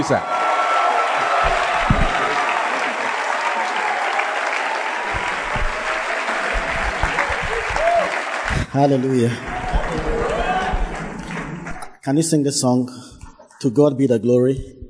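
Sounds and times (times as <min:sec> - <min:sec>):
speech: 0:00.0 - 0:00.3, 0:08.8 - 0:09.6, 0:12.0 - 0:14.8
church audience clapping: 0:00.0 - 0:12.0
low thumps: 0:01.4 - 0:02.3, 0:05.1 - 0:08.8, 0:09.4 - 0:12.0, 0:14.6 - 0:14.8.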